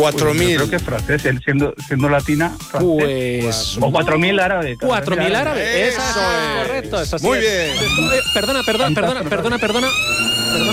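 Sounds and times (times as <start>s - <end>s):
speech: 0.0s - 10.7s
laughter: 5.3s - 7.0s, 7.8s - 10.7s
loud wavering school siren wailing: 7.3s - 10.7s.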